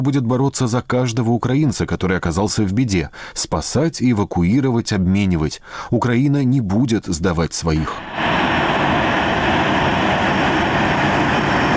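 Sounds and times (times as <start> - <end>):
speech: 0.0 - 8.4
passenger airliner engines roaring: 8.0 - 11.7.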